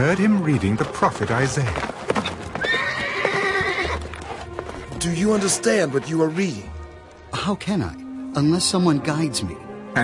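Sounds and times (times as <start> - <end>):
speech: 0.0 - 1.9, 5.0 - 10.0
clatter of horse hooves pulling a chariot: 0.0 - 6.4
horse pulling a chariot whinnying: 2.2 - 4.3.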